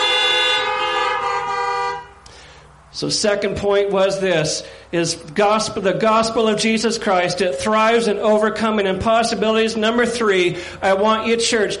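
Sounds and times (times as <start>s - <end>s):
car horns honking in response to a preacher during a church service: 0.0s - 2.6s
speech: 3.0s - 11.7s.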